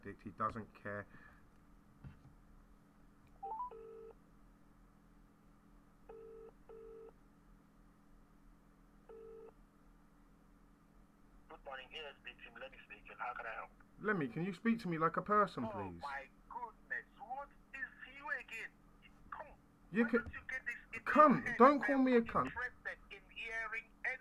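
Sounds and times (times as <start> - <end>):
low hum: 0.0 - 24.1
speech: 0.2 - 1.3, 11.6 - 16.4, 19.9 - 23.9
telephone ringing tone in double-pulse bursts: 3.4 - 4.1.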